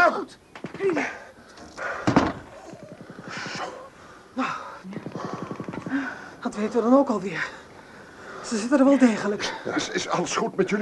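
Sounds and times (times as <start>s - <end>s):
speech: 0.3s - 1.2s, 6.6s - 7.6s, 8.5s - 10.7s
door slamming shut: 2.0s - 2.5s.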